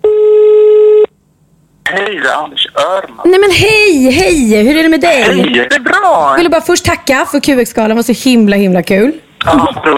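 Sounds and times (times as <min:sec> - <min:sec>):
telephone ringing tone on an outgoing call: 0:00.0 - 0:01.1
speech: 0:01.9 - 0:09.9.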